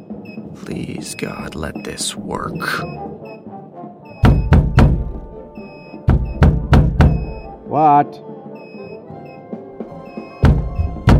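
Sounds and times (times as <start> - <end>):
speech: 0.6 - 3.1, 7.8 - 8.3
knocking on a door: 4.2 - 5.4, 6.1 - 7.5, 10.3 - 11.1.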